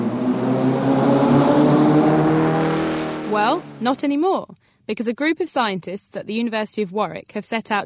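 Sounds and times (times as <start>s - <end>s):
sports car engine revving: 0.0s - 3.8s
speech: 3.4s - 7.8s.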